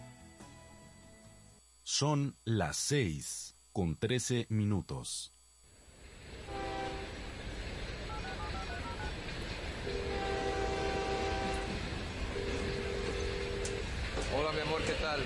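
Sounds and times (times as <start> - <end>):
speech: 1.9 - 5.4, 14.4 - 15.2
train at a station rumbling before boarding: 5.8 - 15.2
sustained tonal horn-like blasts of a train at a station: 6.4 - 7.2, 9.8 - 15.2.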